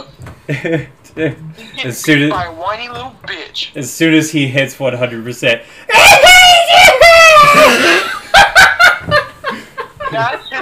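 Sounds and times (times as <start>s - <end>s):
speech: 0.5s - 6.9s, 10.2s - 10.6s
person imitating an anime character power-up scream: 5.9s - 8.0s
person laughing: 7.4s - 10.6s.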